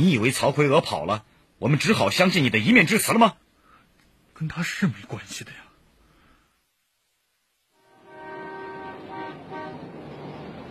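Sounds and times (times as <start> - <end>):
speech: 0.0 - 3.4, 4.4 - 5.6
vehicle horns honking at a bus station: 7.8 - 10.2.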